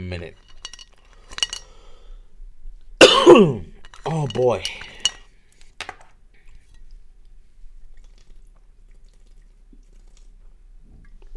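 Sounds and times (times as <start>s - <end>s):
speech: 0.0s - 0.5s, 3.4s - 3.7s, 4.3s - 4.8s
glass clinking: 0.4s - 1.8s, 3.0s - 5.3s
sipping water from a glass and swallowing: 7.8s - 11.3s.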